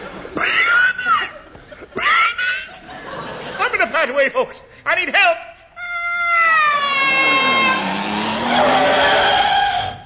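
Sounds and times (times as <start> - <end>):
laughter: 0.0 - 4.3
speech: 4.0 - 5.5
mink-covered motor car tires screeching into a skid: 6.7 - 10.0.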